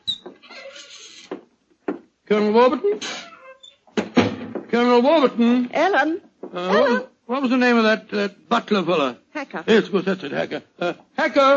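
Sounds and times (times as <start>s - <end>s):
house door creaking open: 0.0s - 1.4s, 2.9s - 4.7s
speech: 2.3s - 3.2s, 4.7s - 11.5s
house door knocking to rest: 3.9s - 4.8s.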